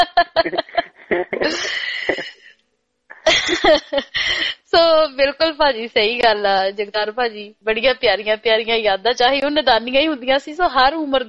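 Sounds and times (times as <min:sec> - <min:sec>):
laughter: 0:00.0 - 0:02.4, 0:03.1 - 0:04.2
man coughing: 0:00.4 - 0:02.5
speech: 0:03.7 - 0:11.2.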